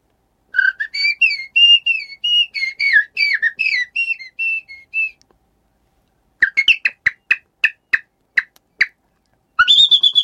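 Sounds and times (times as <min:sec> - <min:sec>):
male common blackbird courtship song: 0:00.6 - 0:05.2, 0:06.4 - 0:08.9, 0:09.6 - 0:10.2.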